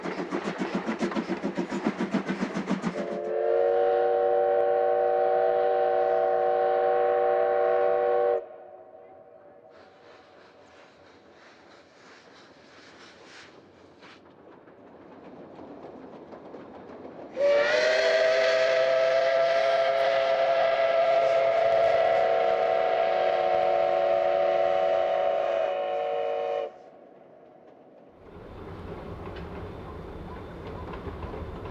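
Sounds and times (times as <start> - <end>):
rushing steam from a steam locomotive: 0.0 - 8.6, 9.6 - 27.2, 28.1 - 31.7
steam train rumbling and hissing: 0.0 - 31.7
steam locomotive whistle blasts: 2.9 - 9.1, 17.4 - 27.0.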